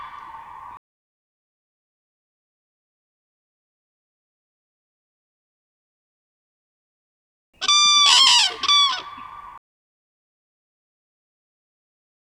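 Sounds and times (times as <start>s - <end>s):
common crane trumpeting played back: 7.6s - 9.6s.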